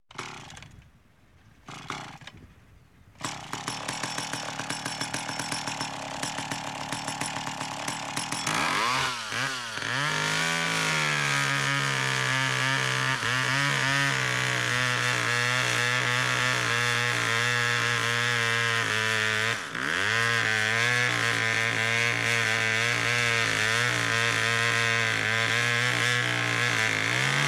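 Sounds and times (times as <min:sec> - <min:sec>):
chainsaw: 0:00.1 - 0:00.9, 0:01.6 - 0:02.5, 0:03.2 - 0:27.4.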